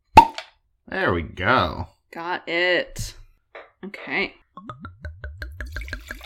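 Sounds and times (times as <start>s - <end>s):
speech: 0.9s - 3.2s, 3.8s - 4.9s
wine glugging from a bottle into a glass: 4.7s - 6.2s.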